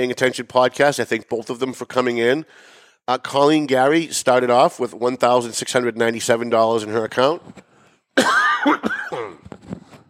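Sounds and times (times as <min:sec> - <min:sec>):
speech: 0:00.0 - 0:09.5
coughing: 0:08.2 - 0:09.5.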